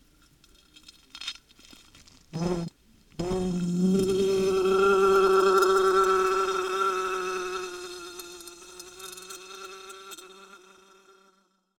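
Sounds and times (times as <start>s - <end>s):
wasp buzzing under glass: 2.4s - 11.3s.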